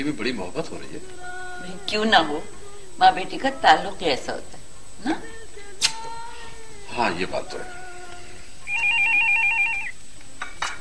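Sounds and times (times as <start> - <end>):
speech: 0.0 - 5.4, 6.9 - 7.8
telephone ringing with a warbling electronic trill: 8.7 - 10.0.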